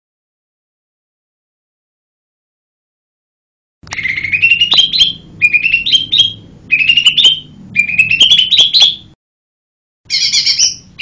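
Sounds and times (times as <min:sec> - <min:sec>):
lesser green leafbird song of sweet whistled notes: 0:03.9 - 0:09.1, 0:10.1 - 0:10.9.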